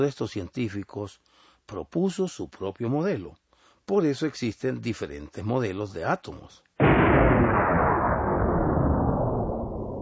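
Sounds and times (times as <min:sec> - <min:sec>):
speech: 0:00.0 - 0:07.1
loud explosion: 0:06.8 - 0:10.0.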